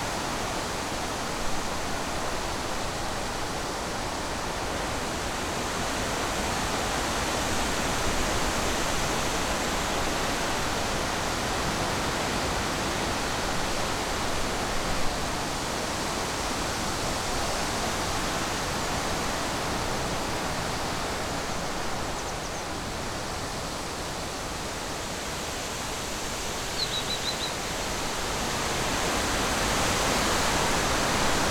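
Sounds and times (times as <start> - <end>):
strong wind rushing through a forest: 0.0 - 31.5
faint bird chirp: 26.8 - 27.6.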